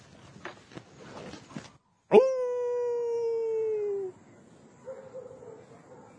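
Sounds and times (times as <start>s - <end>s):
rustling: 0.0s - 1.9s
man howling imitating a wolf in the dark woods in Paraíba: 2.1s - 4.2s.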